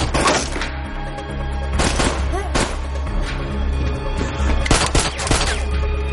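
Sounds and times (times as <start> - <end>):
steady low rumble of dramatic film soundtrack: 0.0 - 6.1
gunfire in a film shootout: 1.8 - 3.0, 4.6 - 5.7.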